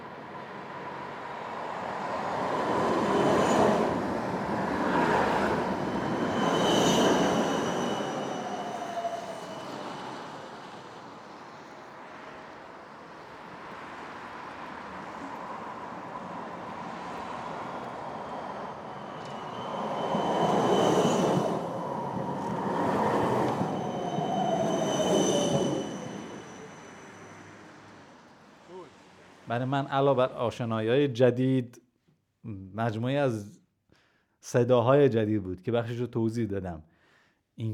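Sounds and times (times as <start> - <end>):
electric street tram wheels rumbling and squealing on rails: 0.0 - 28.6
electric street tram bell ringing: 5.6 - 10.3, 15.3 - 28.3
speech: 29.5 - 31.8, 32.8 - 33.6, 34.4 - 36.9, 37.6 - 37.7.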